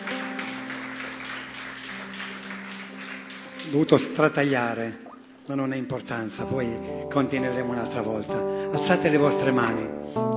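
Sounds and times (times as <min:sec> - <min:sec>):
crowd applauding: 0:00.0 - 0:05.0
speech: 0:03.6 - 0:10.3.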